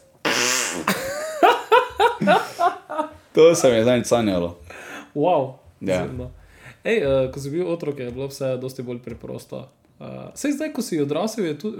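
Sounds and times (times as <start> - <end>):
buzzy hand fart squeezed from the inside of an elbow: 0.1 - 2.0
person laughing in short bursts: 0.8 - 3.2
speech: 2.2 - 2.6, 3.4 - 4.6, 5.2 - 11.7.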